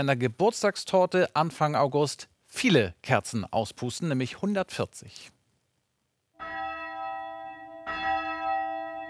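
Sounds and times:
speech: 0:00.0 - 0:05.4
bell in a 20-metre-high 140-year-old bell tower rung by radio remote control: 0:06.4 - 0:09.0.

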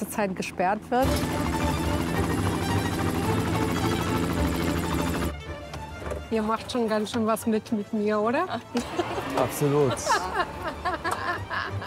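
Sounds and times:
helicopter rotor noise with engine roar: 0:00.0 - 0:05.4
speech: 0:00.1 - 0:02.0, 0:06.3 - 0:10.6
laughter: 0:08.5 - 0:11.8.

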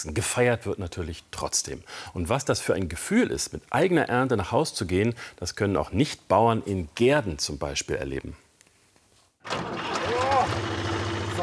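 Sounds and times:
speech: 0:00.0 - 0:08.4
tractor engine running: 0:09.5 - 0:11.4.

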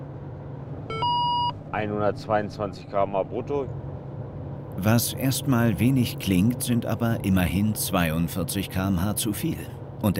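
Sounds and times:
speed measurement device electronic beep on a highway: 0:00.9 - 0:01.5
speech: 0:01.7 - 0:03.8, 0:04.8 - 0:10.1.

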